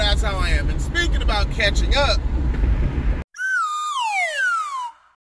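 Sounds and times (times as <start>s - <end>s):
speech: 0.1s - 2.3s
whistle tone sliding downward in pitch: 3.3s - 5.1s.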